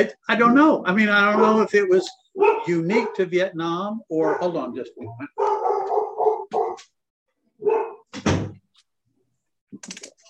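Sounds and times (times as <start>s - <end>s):
speech: 0.0s - 5.6s, 9.8s - 10.0s
dogs barking: 1.2s - 3.3s, 4.1s - 7.0s, 7.6s - 8.1s
thump: 8.1s - 8.6s.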